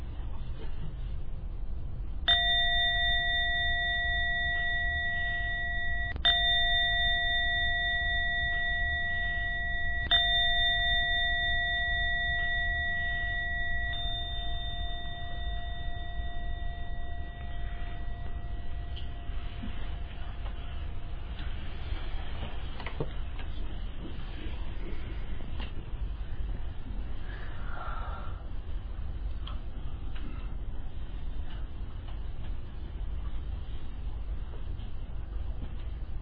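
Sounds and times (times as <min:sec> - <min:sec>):
low hum: 0:00.0 - 0:36.2
meditation gong struck to end a meditation: 0:02.3 - 0:22.0.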